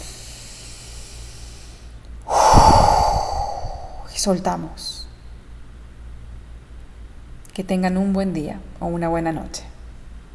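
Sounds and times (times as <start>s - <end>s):
long deep breath in and out close to the microphone: 0.0s - 4.8s
speech: 4.2s - 5.0s, 7.6s - 9.7s.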